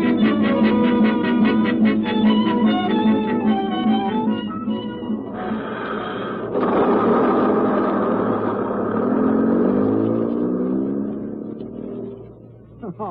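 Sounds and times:
heavy bus engine rumbling as the vehicle pulls in: 0:00.0 - 0:13.0.

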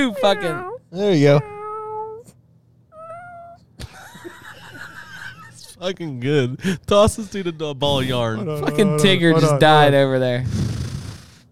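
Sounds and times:
man imitating a cat meowing: 0:00.0 - 0:01.4, 0:08.0 - 0:09.8
speech: 0:00.0 - 0:01.5, 0:05.8 - 0:10.7
laughter: 0:03.8 - 0:05.8, 0:08.0 - 0:09.9.

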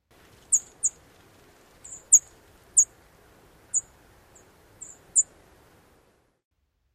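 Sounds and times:
faint hiss: 0:00.0 - 0:06.9
sparrow sharp high-pitched tseep alarm calls: 0:00.4 - 0:01.0, 0:01.8 - 0:03.0, 0:03.7 - 0:05.4.

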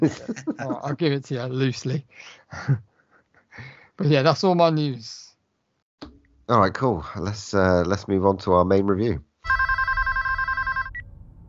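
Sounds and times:
laughter: 0:00.0 - 0:01.1
speech: 0:00.0 - 0:02.9, 0:03.6 - 0:05.3, 0:06.0 - 0:09.7
telephone ringing with electronic trill: 0:09.4 - 0:11.1
short high beep: 0:09.5 - 0:11.2.

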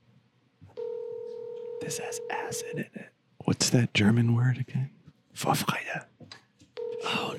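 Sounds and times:
electronic ringback tone from an outgoing phone call: 0:00.8 - 0:02.7, 0:06.8 - 0:07.3
speech: 0:01.8 - 0:06.1.

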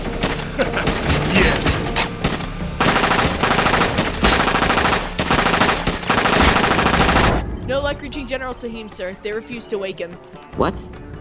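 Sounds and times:
laughter: 0:00.4 - 0:01.7
M249 light machine gun firing in sustained bursts: 0:02.8 - 0:07.4
speech: 0:07.9 - 0:11.2.

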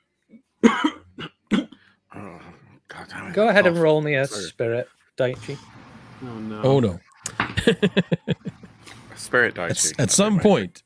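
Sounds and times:
person coughing: 0:00.6 - 0:01.8
speech: 0:03.3 - 0:08.5, 0:09.2 - 0:10.8
laughter: 0:07.2 - 0:10.3.

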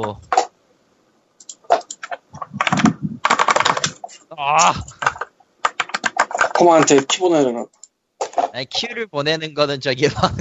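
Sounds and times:
speech: 0:00.0 - 0:00.3, 0:04.4 - 0:05.0, 0:06.6 - 0:07.8, 0:08.6 - 0:10.3
fast forceful typing on a computer keyboard: 0:01.4 - 0:04.0, 0:04.8 - 0:07.2
laughter: 0:10.0 - 0:10.3.

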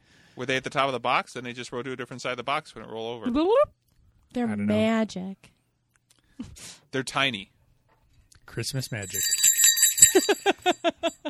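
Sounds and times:
speech: 0:00.4 - 0:05.6, 0:06.4 - 0:07.5, 0:08.5 - 0:09.4, 0:10.2 - 0:11.2
small bell ringing: 0:08.8 - 0:11.2.

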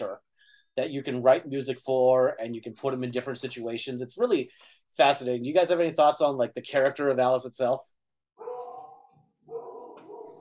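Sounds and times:
speech: 0:00.0 - 0:07.9
dog barking: 0:08.4 - 0:10.3.

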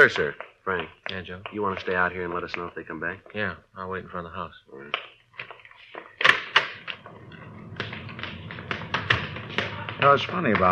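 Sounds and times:
speech: 0:00.0 - 0:05.2, 0:10.0 - 0:10.7
back door of a house opening and closing: 0:06.1 - 0:10.3.

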